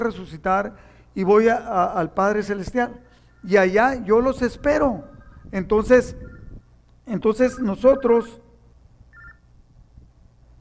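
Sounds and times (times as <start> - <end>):
speech: 0.0 - 6.3, 7.1 - 8.4
mobile phone two-tone electronic ring: 2.9 - 4.0, 5.0 - 6.6, 9.1 - 9.4.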